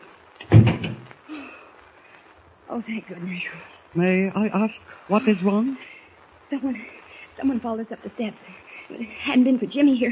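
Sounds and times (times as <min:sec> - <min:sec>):
door being pushed shut with a heavy low thud: 0:00.4 - 0:01.1
speech: 0:02.7 - 0:05.9, 0:06.5 - 0:10.0.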